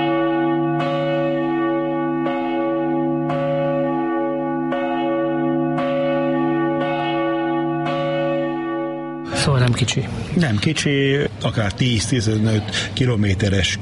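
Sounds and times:
large church bell tolling: 0.0s - 9.9s
speech: 9.7s - 13.8s.

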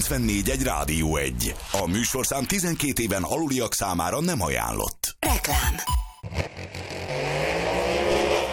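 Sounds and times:
speech: 0.0s - 6.8s
engines roaring and revving: 6.2s - 8.5s.

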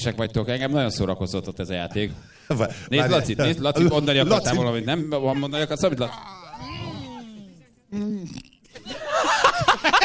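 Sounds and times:
speech: 0.0s - 6.8s, 7.9s - 10.0s
several people chuckling with laughter: 6.6s - 10.0s
person burping: 8.0s - 9.7s.

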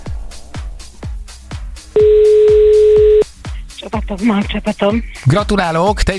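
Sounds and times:
loud telephone tone of a call to a radio call-in game: 2.0s - 3.2s
speech: 4.1s - 6.1s.

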